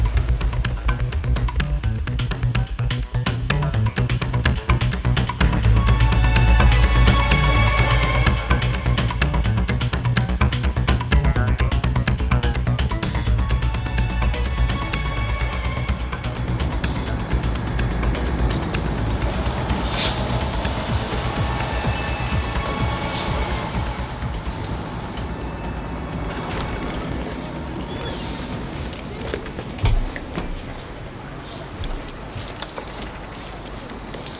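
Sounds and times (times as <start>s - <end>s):
heavy bus engine rumbling: 0.0s - 32.5s
bus air brakes hissing: 13.0s - 29.2s.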